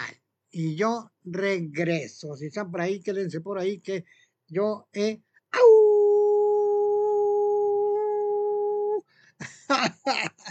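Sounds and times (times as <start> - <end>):
speech: 0.5 - 5.7, 9.4 - 10.3
person howling: 5.6 - 9.0.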